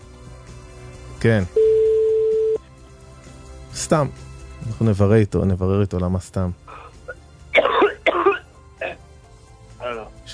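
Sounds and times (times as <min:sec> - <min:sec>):
speech: 0:01.2 - 0:01.6, 0:03.8 - 0:06.6
person coughing: 0:06.7 - 0:09.1
throat clearing: 0:06.7 - 0:09.1.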